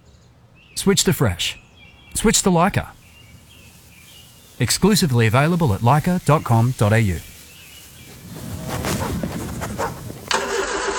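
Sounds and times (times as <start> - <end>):
speech: 0.8 - 3.0, 4.6 - 7.3
ute engine starting: 10.3 - 10.9.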